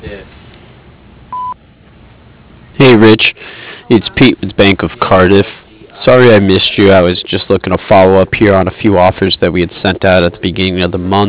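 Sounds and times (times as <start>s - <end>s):
voicemail beep after a recorded greeting: 1.3s - 1.6s
speech: 2.8s - 11.2s.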